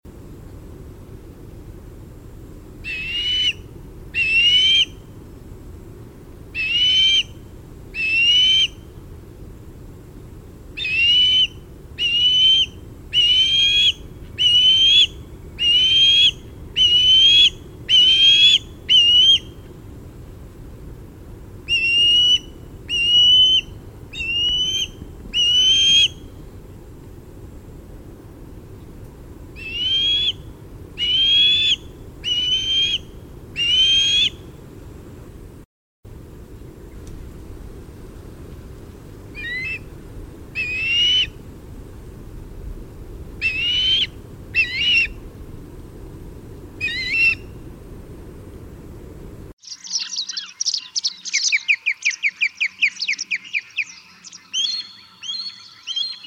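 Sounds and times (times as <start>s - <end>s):
osprey calling: 2.8s - 5.1s, 6.5s - 8.9s, 10.7s - 19.7s, 21.6s - 26.4s, 29.5s - 34.5s, 39.3s - 39.9s, 40.5s - 41.4s, 43.4s - 45.2s, 46.8s - 47.6s, 49.6s - 56.2s.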